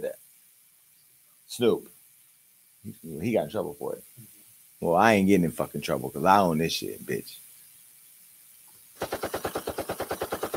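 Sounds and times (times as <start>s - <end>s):
speech: 1.5s - 1.9s, 2.8s - 7.4s
rapid burst of gunshots like automatic fire: 9.0s - 10.5s.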